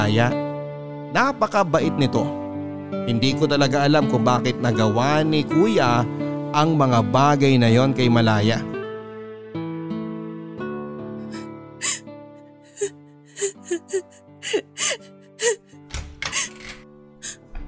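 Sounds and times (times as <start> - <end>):
speech: 0.0 - 0.4, 1.1 - 2.4, 3.1 - 8.7
person crying and whimpering in a bedroom: 12.7 - 15.7.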